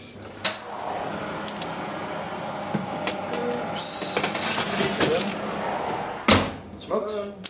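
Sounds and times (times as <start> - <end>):
oven door shutting: 0.4 - 6.6
tray scraping slide into an oven: 0.6 - 6.3.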